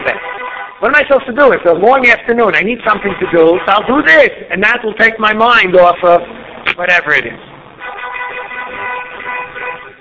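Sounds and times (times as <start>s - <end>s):
car horn blaring: 0.0s - 1.0s, 2.9s - 4.0s, 7.8s - 9.9s
speech: 0.8s - 7.5s.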